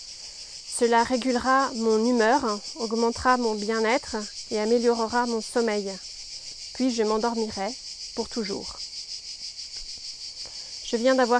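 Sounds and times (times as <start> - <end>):
cicadas droning on a hot day of 38 degrees: 0.0 - 11.3
speech: 0.8 - 6.1, 6.8 - 8.9, 10.9 - 11.3.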